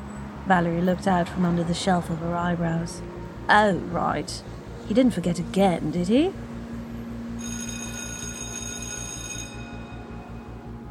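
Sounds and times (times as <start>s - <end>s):
speech: 0.5s - 6.5s
loud electric school bell ringing: 7.4s - 10.8s.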